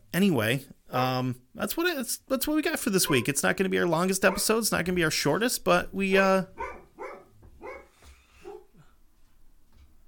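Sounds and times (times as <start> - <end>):
speech: 0.2 - 6.8
dog barking: 3.0 - 3.3, 4.3 - 4.6, 6.6 - 8.8.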